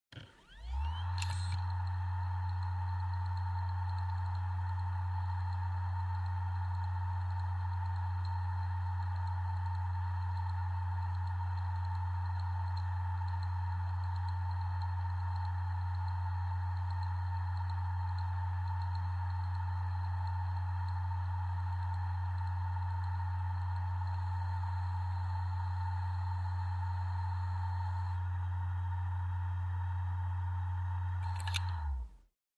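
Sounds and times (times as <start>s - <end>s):
hard disk drive operating: 0.1s - 32.2s.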